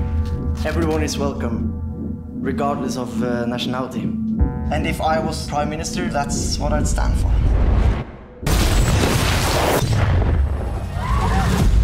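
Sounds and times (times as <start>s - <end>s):
speech: 0.6s - 7.7s
large bomb explosion: 7.5s - 11.8s.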